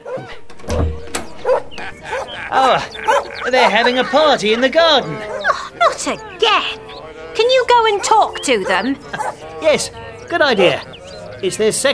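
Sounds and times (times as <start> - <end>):
laughter: 1.2 - 11.9
dog barking in a neighboring yard: 1.4 - 6.2, 7.7 - 9.8, 10.4 - 10.9
speech: 2.5 - 5.3, 6.0 - 6.8, 7.4 - 11.9.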